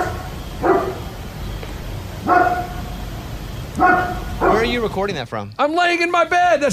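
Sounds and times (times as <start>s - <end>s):
large dog barking at night: 0.0s - 1.2s, 2.2s - 3.0s, 3.8s - 4.9s
quiet steady hiss: 0.0s - 6.7s
speech: 4.8s - 6.7s.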